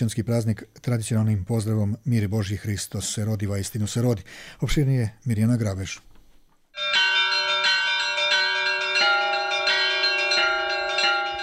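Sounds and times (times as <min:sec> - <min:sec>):
speech: 0:00.0 - 0:06.1
Serbian Orthodox church bells ringing at midnight in Banja Luka marking Christmas: 0:06.8 - 0:11.4.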